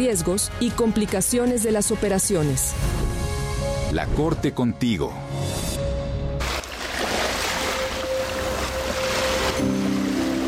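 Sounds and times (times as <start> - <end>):
speech: 0.0 - 3.0, 3.9 - 5.7
ocean waves of the Sea of Cortez washing against the shore: 6.4 - 10.4.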